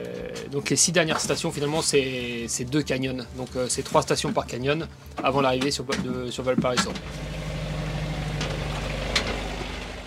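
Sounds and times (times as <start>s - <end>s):
speech: 0.5s - 7.4s
ship engine rumbling in an enclosed engine room: 6.8s - 10.0s.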